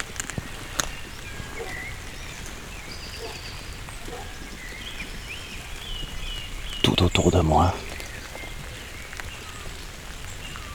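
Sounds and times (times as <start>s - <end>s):
light raindrops pattering on surfaces on a forest road overlooking a valley: 0.0s - 6.8s, 7.5s - 10.7s
speech: 6.9s - 7.8s.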